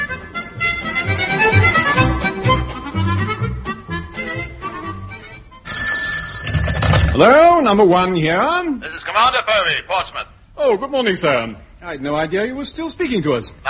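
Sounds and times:
busy tuneful music with a low bass line: 0.0 - 5.5
telephone bell ringing: 5.6 - 7.4
speech: 7.2 - 13.6.

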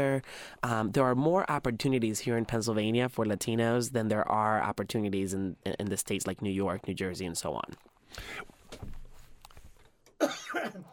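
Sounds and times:
speech: 0.0 - 9.0, 10.5 - 10.9
harsh cough from a speaker during a program: 10.2 - 10.9.

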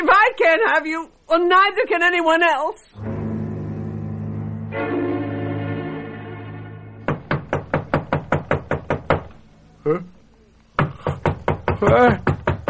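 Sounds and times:
speech: 0.5 - 3.1, 9.8 - 10.2, 11.8 - 12.3
low sustained tone: 3.0 - 7.0
loud rapid knocking on a door: 7.0 - 9.4, 10.8 - 12.6
short vocal sound: 9.8 - 10.2.

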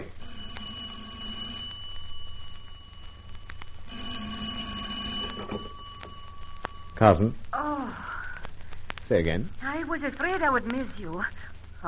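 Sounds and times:
telephone ringing in a hotel suite: 0.0 - 7.4
low steady hum: 0.0 - 11.8
speech: 7.0 - 7.4, 9.1 - 11.8.

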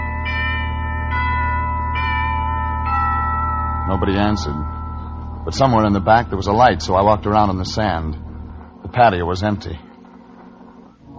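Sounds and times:
doorbell ringing: 0.0 - 9.1
constant low hum: 0.0 - 11.1
speech: 3.9 - 4.8, 5.5 - 8.2, 8.9 - 9.9.

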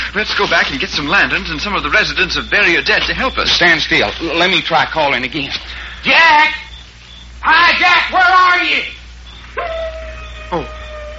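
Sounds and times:
speech: 0.2 - 6.6, 7.4 - 9.0, 10.5 - 10.8
wolf whining: 9.2 - 11.1.

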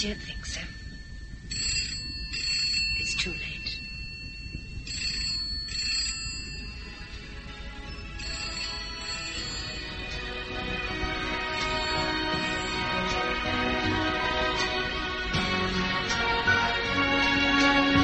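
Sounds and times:
speech: 0.0 - 0.7
old telephone bell ringing: 0.0 - 13.6
low rumbling background: 0.0 - 18.0.

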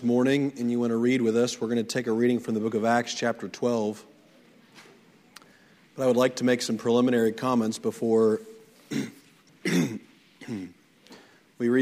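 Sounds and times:
speech: 0.0 - 4.1, 6.0 - 10.8, 11.6 - 11.7
man with allergies clearing his throat and coughing during a church sermon: 8.9 - 10.8.

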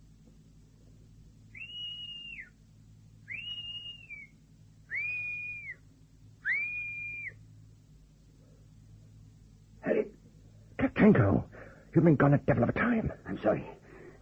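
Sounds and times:
low continuous rumble: 0.0 - 14.2
high-pitched whistles blown as a signal: 1.5 - 2.6, 3.2 - 5.8, 6.4 - 7.4
speech: 11.1 - 14.2.

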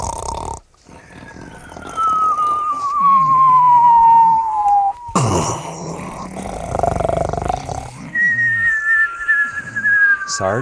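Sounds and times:
long slowly falling whistle: 1.2 - 5.2, 8.0 - 10.6
speech: 10.4 - 10.6.

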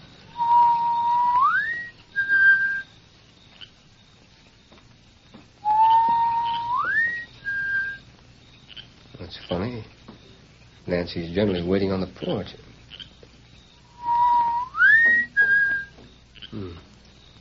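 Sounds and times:
person whistling a two-part signal: 0.4 - 2.9, 5.6 - 8.0, 13.9 - 16.0
speech: 10.9 - 12.7.

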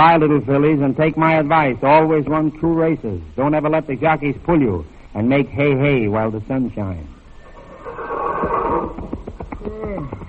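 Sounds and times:
speech: 0.0 - 7.2
horse whinnying: 7.3 - 9.3.

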